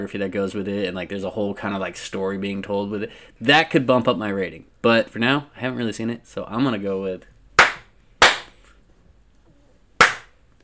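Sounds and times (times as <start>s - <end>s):
speech: 0.0s - 7.3s
slaps: 7.6s - 8.6s, 10.0s - 10.4s.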